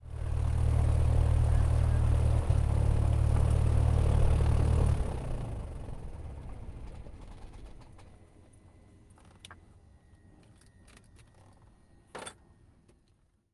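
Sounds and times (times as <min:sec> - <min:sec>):
Cessna 172 small propeller airplane engine shutting off: 0:00.0 - 0:11.7.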